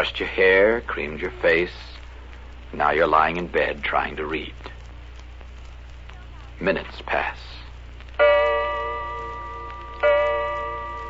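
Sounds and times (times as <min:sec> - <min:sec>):
speech: 0:00.0 - 0:01.9, 0:02.7 - 0:04.7, 0:06.6 - 0:07.6
low steady hum: 0:00.0 - 0:11.0
old grandfather clock in a hall striking the hour: 0:08.2 - 0:11.0.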